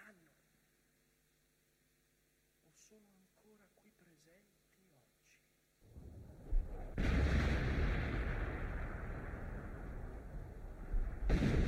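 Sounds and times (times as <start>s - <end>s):
speech: 2.9s - 5.2s
artillery bombardment at night: 6.0s - 11.6s.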